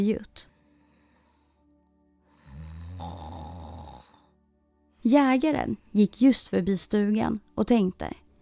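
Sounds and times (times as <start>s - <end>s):
speech: 0.0s - 0.5s, 5.0s - 8.2s
loud drawn-out deep rasping snore: 2.3s - 4.3s.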